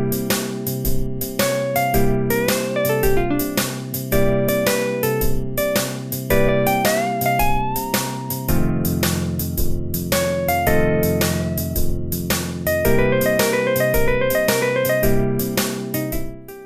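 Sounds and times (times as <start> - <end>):
steady regular beat and low accompaniment: 0.0 - 16.6
machine-generated blues solo built from randomly chosen one-bar licks: 1.4 - 3.6, 4.2 - 9.1, 10.1 - 11.8, 12.7 - 15.1.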